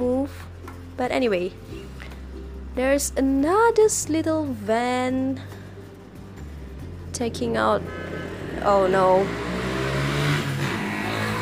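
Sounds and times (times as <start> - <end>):
speech: 1.0 - 1.8, 2.8 - 5.6, 7.2 - 8.0, 8.6 - 9.4
steady hum of traffic: 5.6 - 11.4
motorcycle passing by: 7.3 - 11.4.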